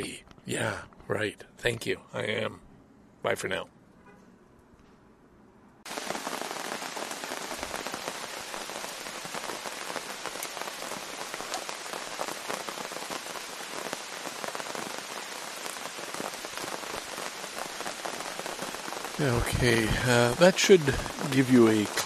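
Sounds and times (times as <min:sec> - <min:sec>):
speech: 0:00.0 - 0:03.8, 0:19.2 - 0:22.0
steady rain drumming on a tent while camping: 0:05.9 - 0:22.0.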